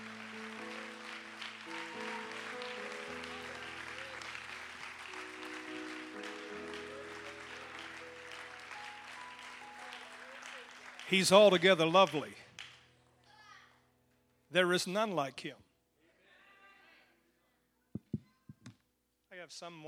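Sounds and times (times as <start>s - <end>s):
sustained organ or keyboard chords: 0.0s - 9.8s
large crowd clapping enthusiastically: 0.0s - 12.9s
speech: 11.1s - 12.4s, 14.6s - 15.6s, 19.5s - 19.8s.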